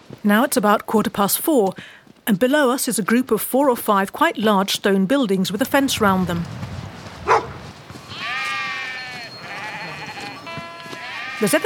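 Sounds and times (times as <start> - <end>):
speech: 0.1 - 6.7, 11.4 - 11.6
brief sharp bark-like sound: 7.2 - 7.6
flock of hundreds of sheep bleating outdoors: 8.0 - 11.6.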